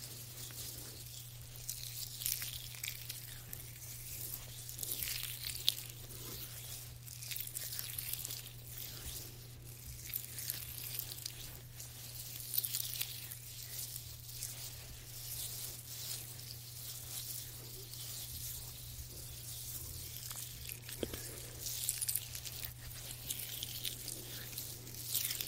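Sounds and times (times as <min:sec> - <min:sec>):
gentle squishy massage strokes: 0:00.0 - 0:25.4
hand massage rubbing: 0:00.0 - 0:25.4.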